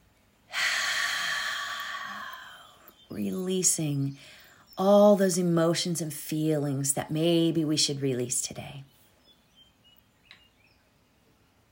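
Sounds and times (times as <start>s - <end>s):
long slow deep breath in: 0.5s - 2.8s
speech: 3.2s - 9.0s.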